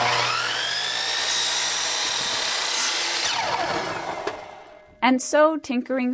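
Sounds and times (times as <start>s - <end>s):
chop saw cutting in a backyard: 0.0s - 4.8s
speech: 5.0s - 6.1s.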